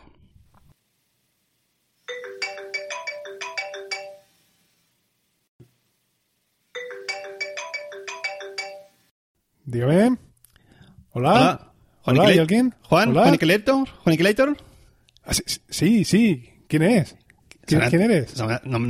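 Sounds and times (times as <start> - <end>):
outgoing phone call ringing tone of bright melodic beeps: 2.1 - 4.3, 6.8 - 9.0
speech: 9.7 - 10.2, 11.2 - 14.7, 15.3 - 18.8.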